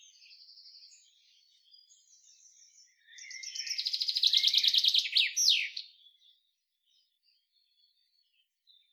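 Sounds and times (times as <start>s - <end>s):
common chaffinch Fringilla coelebs singing: 3.1s - 5.9s.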